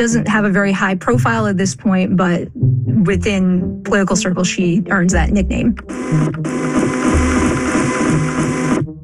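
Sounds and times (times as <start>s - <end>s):
speech: 0.0s - 7.0s
printer printing pages: 5.8s - 8.8s.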